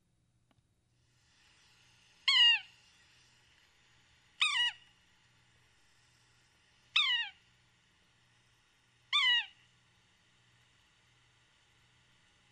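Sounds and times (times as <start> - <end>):
Yellow-bellied Sapsucker calling with nasal mewing downward-slurred notes: 2.2 - 2.8, 4.4 - 4.9, 6.9 - 7.5, 9.1 - 9.6.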